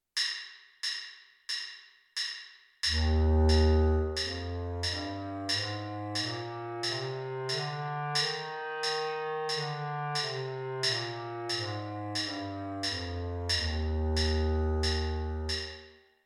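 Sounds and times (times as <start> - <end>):
bass clarinet playing an F major scale: 2.9 - 15.6.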